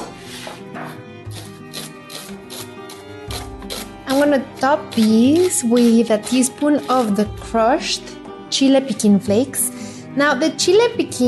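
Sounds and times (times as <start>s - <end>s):
knife thinly slicing garlic cloves: 0.3s - 7.5s
speech: 4.1s - 11.2s.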